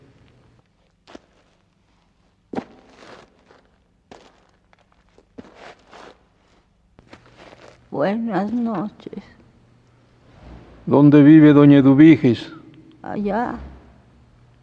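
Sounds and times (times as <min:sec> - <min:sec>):
slow hollow footsteps echoing off walls in a quiet village: 0:01.1 - 0:10.9
speech: 0:07.9 - 0:09.4, 0:10.9 - 0:13.7.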